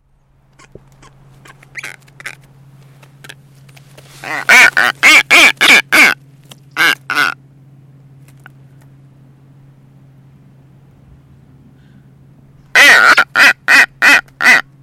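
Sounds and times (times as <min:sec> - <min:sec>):
blue-footed booby calling: 0:00.5 - 0:02.4, 0:04.1 - 0:06.2, 0:06.8 - 0:07.4, 0:12.7 - 0:14.7.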